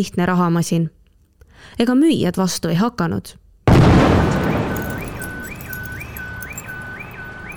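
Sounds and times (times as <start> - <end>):
speech: 0.0 - 1.0, 1.6 - 4.3
bomb explosion: 3.7 - 5.4.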